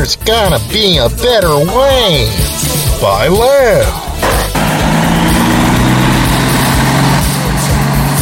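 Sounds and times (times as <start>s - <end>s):
speech: 0.0s - 4.0s
truck engine idling: 0.0s - 8.2s.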